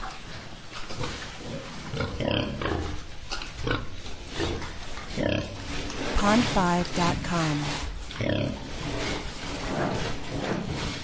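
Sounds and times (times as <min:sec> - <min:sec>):
pig grunting in a pigpen: 0:00.9 - 0:03.0, 0:03.6 - 0:06.1, 0:07.6 - 0:10.8
speech: 0:06.3 - 0:08.7.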